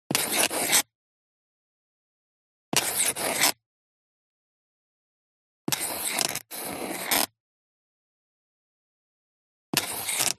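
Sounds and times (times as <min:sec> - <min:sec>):
handwriting with a quill pen: 0:00.1 - 0:00.9, 0:02.7 - 0:03.6, 0:05.7 - 0:07.3, 0:09.7 - 0:10.3.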